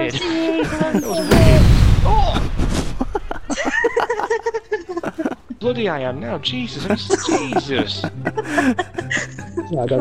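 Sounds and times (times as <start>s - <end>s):
video game firework explosion: 1.0s - 4.6s
laughter: 3.0s - 5.6s, 6.6s - 9.9s
speech: 5.6s - 9.9s.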